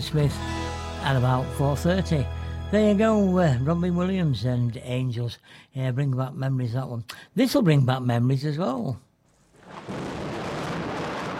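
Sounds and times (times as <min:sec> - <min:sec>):
speech: 0:00.0 - 0:09.1
thunder rumbling: 0:09.5 - 0:11.3.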